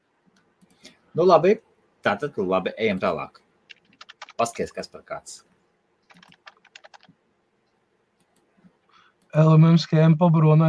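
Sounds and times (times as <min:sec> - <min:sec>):
speech: 0:01.2 - 0:03.4, 0:04.4 - 0:05.5, 0:09.3 - 0:10.6
computer keyboard typing: 0:03.7 - 0:04.8, 0:06.0 - 0:07.2.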